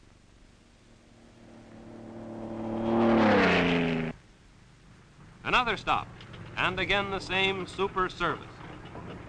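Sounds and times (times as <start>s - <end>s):
faint hum: 0.0s - 7.6s
car engine roaring as the vehicle speeds past: 0.5s - 4.2s
speech: 5.5s - 8.5s.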